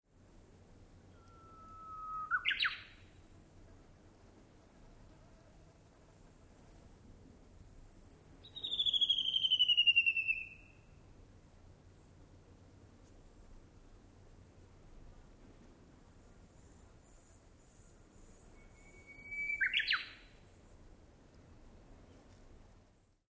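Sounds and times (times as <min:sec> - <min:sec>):
bush warbler: 0:01.0 - 0:03.2, 0:08.4 - 0:10.8, 0:16.6 - 0:20.4.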